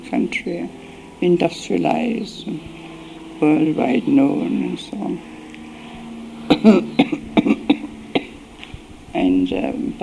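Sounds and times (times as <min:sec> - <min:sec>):
speech: 0:00.1 - 0:02.8, 0:03.4 - 0:05.3, 0:06.6 - 0:07.2, 0:09.2 - 0:10.0
weak coughing from an injured person: 0:06.5 - 0:08.4.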